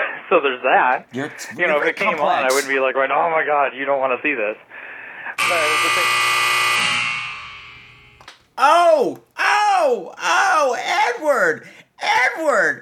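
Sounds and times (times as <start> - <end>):
speech: 0.3 - 4.8, 5.5 - 6.2, 8.6 - 12.8
voice letting out drawn-out swooping exclamations: 1.2 - 2.8, 8.6 - 12.8
loud harsh game show buzzer: 5.4 - 8.2.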